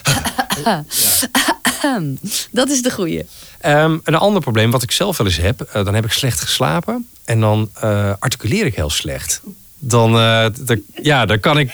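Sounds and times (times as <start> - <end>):
laughter: 0.0 - 1.5
person clearing throat: 0.0 - 2.0
person making light airy coughs in a posh English manner: 0.0 - 2.0
speech: 0.6 - 11.7
voiced speech-like vocal sounds: 2.0 - 11.7.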